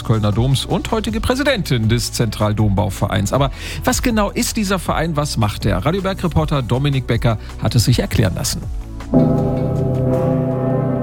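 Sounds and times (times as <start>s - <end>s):
speech: 0.1s - 9.3s
great church bell of Cologne Cathedral ringing: 9.2s - 11.0s.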